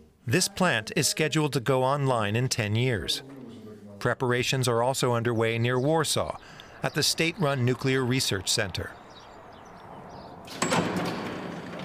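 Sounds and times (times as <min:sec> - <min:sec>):
speech: 0:00.3 - 0:03.4, 0:04.0 - 0:09.0
heavy door opening clunk: 0:09.7 - 0:11.8.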